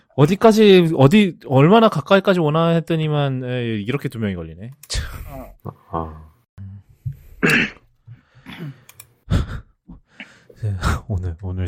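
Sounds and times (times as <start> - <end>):
speech: 0.2 - 6.3, 7.4 - 7.8, 8.6 - 8.8, 10.6 - 11.6
person coughing and clearing their throat: 7.4 - 8.9.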